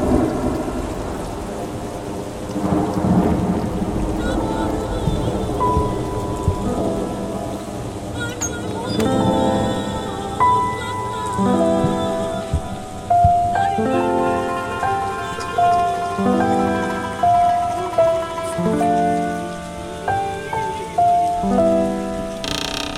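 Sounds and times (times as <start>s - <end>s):
deep thunder rumbles: 0.0s - 8.1s
steady pouring rain: 0.0s - 22.9s
melodic musical accompaniment of sustained tones: 2.5s - 22.9s.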